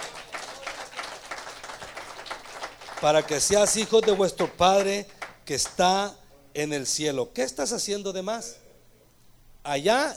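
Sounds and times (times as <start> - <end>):
audience applauding: 0.0 - 5.8
speech: 3.0 - 8.6, 9.6 - 10.1.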